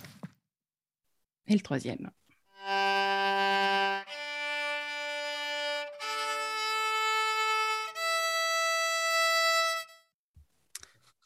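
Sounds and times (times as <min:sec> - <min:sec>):
speech: 0:01.5 - 0:02.2
violin strings being tuned with long bowed notes: 0:02.5 - 0:10.1.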